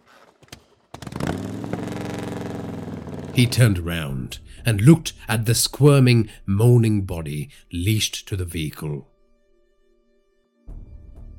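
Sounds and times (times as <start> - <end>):
motorcycle engine cranking, revving and idling: 0.9 - 3.8
speech: 3.4 - 9.1.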